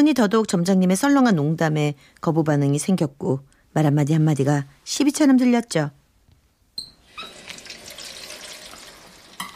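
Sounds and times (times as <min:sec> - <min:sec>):
speech: 0:00.0 - 0:06.0
tap water running into a sink: 0:07.1 - 0:09.5
dishes clattering: 0:09.4 - 0:09.5.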